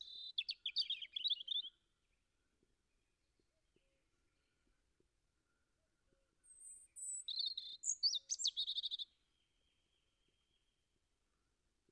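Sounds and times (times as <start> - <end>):
European robin singing: 0.0 - 1.9, 6.4 - 10.8.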